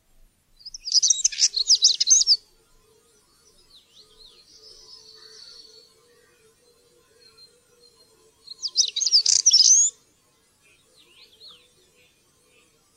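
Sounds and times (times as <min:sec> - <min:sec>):
European stonechat singing scratchy jangling phrases: 0:00.6 - 0:12.9.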